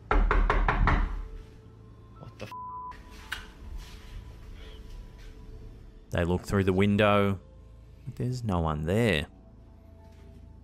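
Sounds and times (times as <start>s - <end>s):
knocking on a back door: 0.0s - 1.3s
speech: 6.1s - 7.5s, 8.1s - 9.4s.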